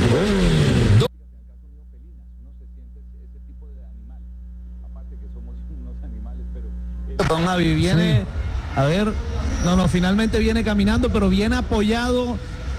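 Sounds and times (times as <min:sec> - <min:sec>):
motorcycle engine revving: 0:00.0 - 0:01.1, 0:06.1 - 0:12.7
low steady hum: 0:00.0 - 0:12.7
speech: 0:00.2 - 0:00.5, 0:07.2 - 0:12.7.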